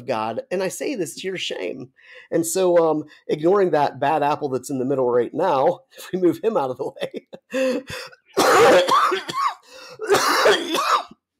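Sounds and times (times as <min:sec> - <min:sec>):
speech: 0:00.0 - 0:11.2
man coughing: 0:07.3 - 0:11.2
man clearing throat: 0:08.3 - 0:11.2.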